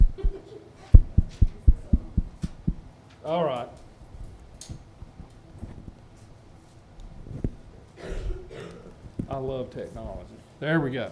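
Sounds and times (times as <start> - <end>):
faint heartbeat: 0.0 - 2.9, 7.1 - 10.2
speech: 3.3 - 3.8, 9.4 - 11.1.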